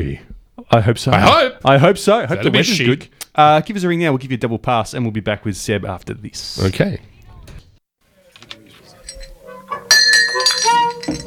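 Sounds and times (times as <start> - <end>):
speech: 0.0 - 7.1
quiet shuffling: 7.5 - 9.9
drinking glass clinking: 8.2 - 11.2.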